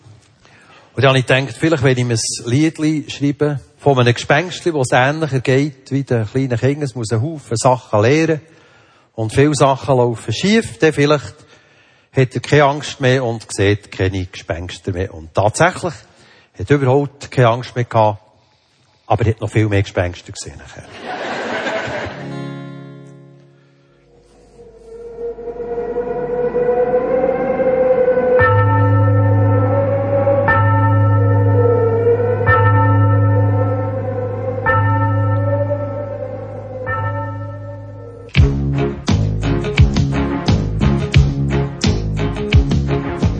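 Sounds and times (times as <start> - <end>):
speech: 1.0 - 8.6, 9.2 - 11.4, 12.2 - 18.2, 19.1 - 21.4
laughter: 20.8 - 22.4
sustained humming backdrop: 24.1 - 38.3
church bell striking midnight: 24.9 - 38.5
lively percussive music: 38.3 - 43.3.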